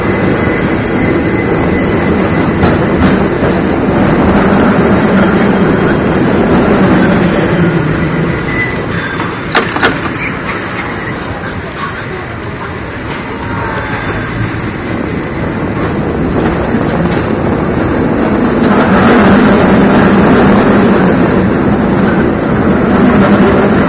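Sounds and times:
San Francisco cable car rumbling along rails on Powell Street: 0.0s - 23.8s.

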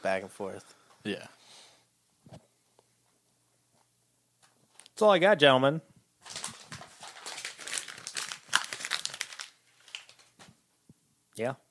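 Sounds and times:
speech: 0.0s - 1.6s, 5.0s - 5.9s, 11.4s - 11.6s
paper being crumpled up: 6.2s - 10.5s.

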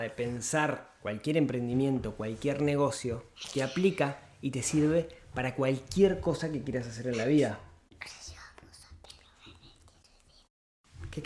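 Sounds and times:
speech: 0.0s - 8.2s
child whispering a secret to an adult: 3.4s - 4.2s, 7.1s - 10.5s.

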